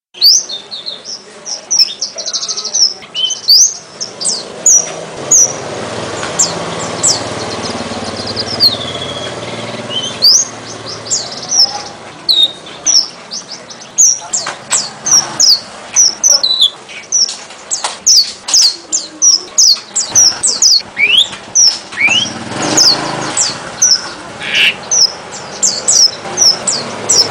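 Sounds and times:
strawberry finch calling: 0:00.2 - 0:27.2.

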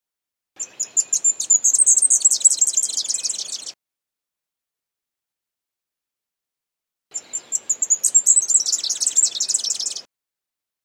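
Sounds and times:
leaf warbler high thin chirps and jittery twitter: 0:00.6 - 0:03.8, 0:07.1 - 0:10.1.

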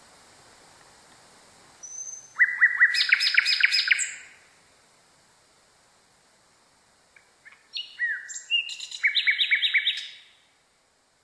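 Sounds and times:
nightingale song: 0:01.8 - 0:04.6, 0:07.1 - 0:11.2.

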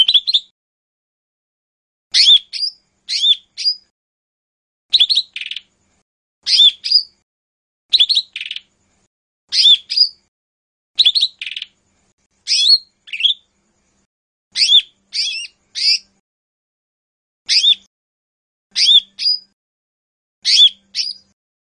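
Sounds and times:
leafbird repeating sharp slurred high whistles: 0:00.0 - 0:00.5, 0:02.2 - 0:03.9, 0:04.9 - 0:05.6, 0:06.4 - 0:07.2, 0:07.9 - 0:08.6, 0:09.5 - 0:10.2, 0:11.0 - 0:11.7, 0:12.5 - 0:13.4, 0:14.6 - 0:16.1, 0:17.5 - 0:17.9, 0:18.7 - 0:19.5, 0:20.4 - 0:21.4.

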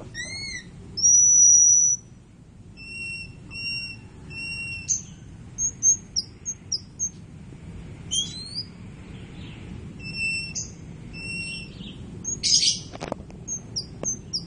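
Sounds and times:
low background hum: 0:00.0 - 0:14.4
white-crowned forktail giving thin high whistles and sharp chips: 0:00.1 - 0:02.1, 0:02.8 - 0:07.1, 0:08.1 - 0:08.7, 0:10.0 - 0:12.9.

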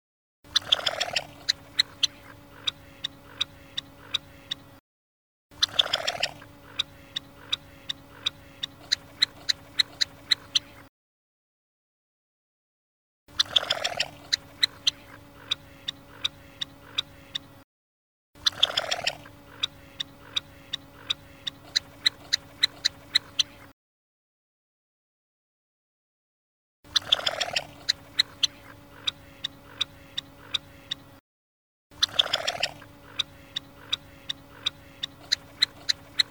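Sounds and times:
female red-necked phalarope calling: 0:00.5 - 0:04.8, 0:05.6 - 0:10.8, 0:13.3 - 0:17.6, 0:18.4 - 0:23.6, 0:26.9 - 0:31.2, 0:32.0 - 0:36.3.

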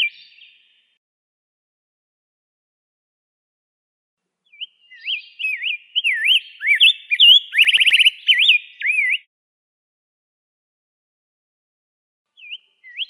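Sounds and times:
Rose-breasted grosbeak song with warbling whistles and rapid trill: 0:04.5 - 0:09.3, 0:12.4 - 0:13.0.

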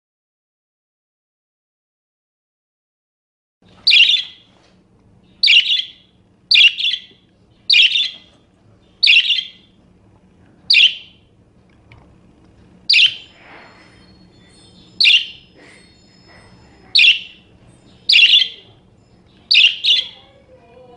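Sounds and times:
soft steady hum: 0:03.6 - 0:20.9
parakeet giving loud grating squawks: 0:03.8 - 0:04.4, 0:05.4 - 0:08.3, 0:09.0 - 0:09.7, 0:10.7 - 0:11.2, 0:12.9 - 0:13.4, 0:14.7 - 0:15.8, 0:16.9 - 0:18.8, 0:19.4 - 0:20.3.

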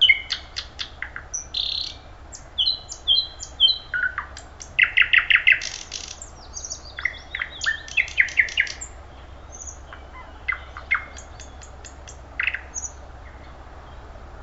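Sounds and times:
faint hum: 0:00.0 - 0:14.4
thrush nightingale song with chock notes, whistles, rattling trills and piping: 0:00.0 - 0:14.4.

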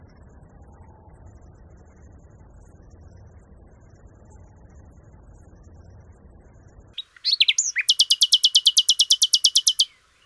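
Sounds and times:
low rumble: 0:00.0 - 0:07.0
common nightingale song with slurred notes and loud repeated chips: 0:07.0 - 0:10.2.

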